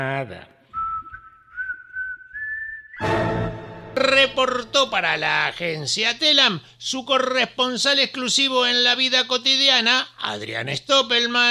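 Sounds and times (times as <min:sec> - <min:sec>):
speech: 0:00.0 - 0:00.6, 0:04.2 - 0:11.5
person whistling a thin tune softly: 0:00.7 - 0:03.5.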